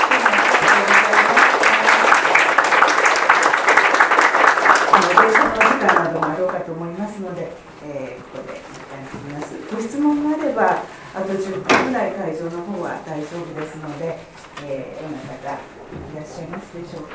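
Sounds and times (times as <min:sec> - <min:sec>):
audience applauding a lecturer: 0:00.0 - 0:06.7
speech: 0:06.0 - 0:17.1.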